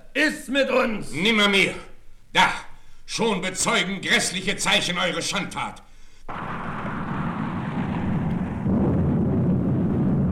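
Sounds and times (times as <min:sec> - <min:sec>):
speech: 0:00.3 - 0:02.6, 0:03.2 - 0:06.5
deep continuous thunder rumbling: 0:06.3 - 0:10.2.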